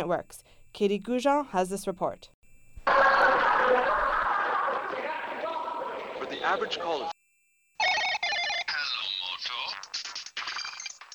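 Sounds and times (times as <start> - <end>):
speech: 0.0 - 3.0, 6.5 - 7.2
laughter: 2.9 - 7.1
cell phone ringing: 7.8 - 9.7.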